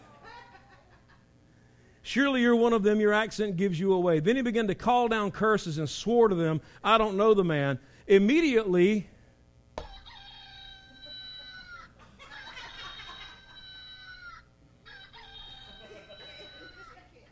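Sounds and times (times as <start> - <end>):
laughter: 0.0 - 1.3, 10.8 - 14.2, 15.1 - 17.2
speech: 2.1 - 9.1
rooster crowing: 9.8 - 17.0.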